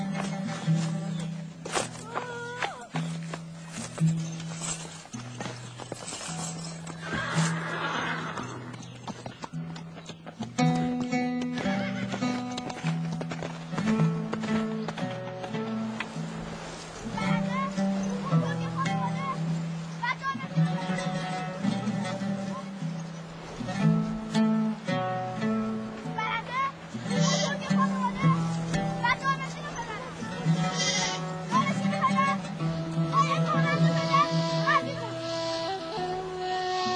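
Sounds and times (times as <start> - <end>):
horse hooves clopping as rider leaves: 0.0 - 36.9
horse neighing as rider leaves: 6.9 - 8.8, 30.5 - 31.3.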